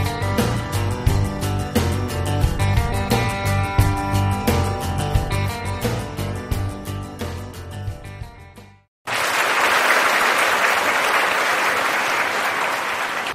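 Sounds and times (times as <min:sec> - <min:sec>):
music: 0:00.0 - 0:08.9, 0:13.2 - 0:13.3
crowd applauding honoured guests at a Buddhist gathering: 0:09.0 - 0:13.3.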